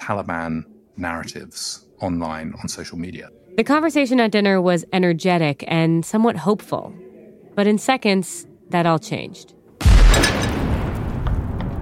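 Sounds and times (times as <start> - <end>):
speech: 0.1 - 10.3
large explosion down the street: 9.8 - 11.8.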